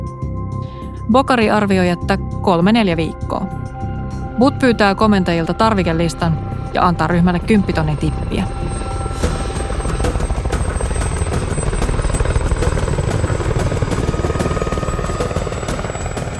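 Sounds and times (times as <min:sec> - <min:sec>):
speech: 0:01.1 - 0:03.8, 0:04.4 - 0:08.9
landing helicopters with rapid rotor chop and heavy engine drone: 0:08.2 - 0:16.3.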